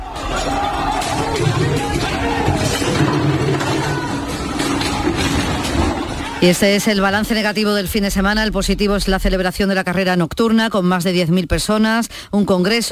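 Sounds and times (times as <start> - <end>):
people shouting in a street brawl: 0.0 - 7.2
thrown chairs crashing in a street brawl: 0.0 - 7.2
glass breaking in a street brawl: 0.2 - 7.0
speech: 6.4 - 12.8.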